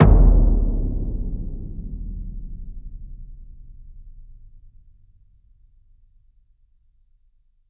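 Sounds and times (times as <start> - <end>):
percussive stab: 0.0 - 4.7.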